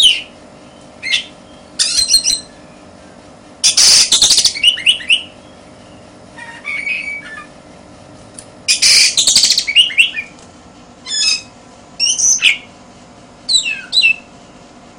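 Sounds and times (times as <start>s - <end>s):
Oriental magpie-robin song: 0.0s - 2.9s, 3.6s - 7.5s, 8.7s - 10.3s, 11.0s - 12.7s, 13.5s - 14.3s.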